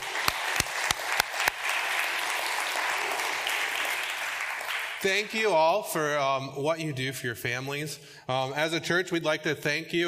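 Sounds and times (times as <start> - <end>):
audience applause at a church Father's Day service: 0.0 - 5.3
speech: 5.0 - 10.0.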